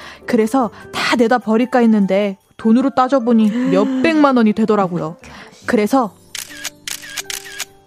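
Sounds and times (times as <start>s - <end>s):
speech: 0.2s - 6.2s
camera shutter clicks: 6.3s - 7.8s.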